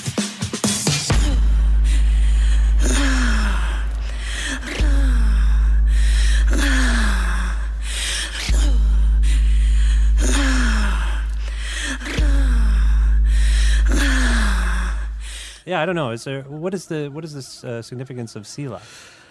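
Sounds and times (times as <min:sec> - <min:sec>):
rhythmic gasping breaths in a song: 0:00.0 - 0:15.7, 0:18.7 - 0:19.2
sustained low musical drone: 0:01.1 - 0:15.4
speech: 0:15.7 - 0:19.2.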